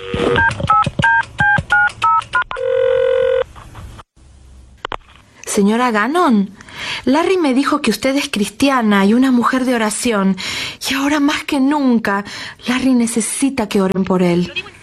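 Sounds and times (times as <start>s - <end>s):
telephone touch-tone dialing beeps: 0.3s - 3.5s
longer sustained telephone tone: 2.4s - 3.5s
speech: 5.7s - 14.7s.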